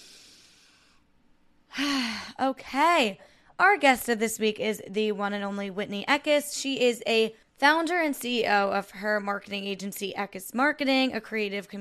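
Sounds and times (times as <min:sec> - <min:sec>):
deep breath in and out during a guided breathing exercise: 0:00.0 - 0:01.1
speech: 0:02.4 - 0:11.7.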